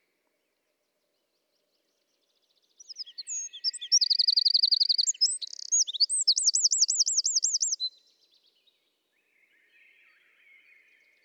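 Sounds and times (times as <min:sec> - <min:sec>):
Eurasian wren singing: 0:02.8 - 0:07.9.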